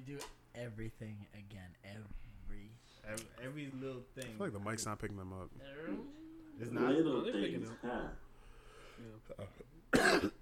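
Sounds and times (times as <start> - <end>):
speech: 0.0 - 8.2, 9.0 - 10.4
casual conversation: 0.0 - 10.3
person coughing: 9.3 - 10.4.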